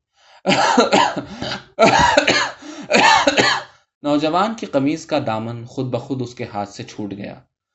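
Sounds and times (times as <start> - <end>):
speech: 0.4 - 2.4, 4.0 - 7.5
old man's hard raspy coughing fit: 0.5 - 3.7
gasping: 1.2 - 3.0.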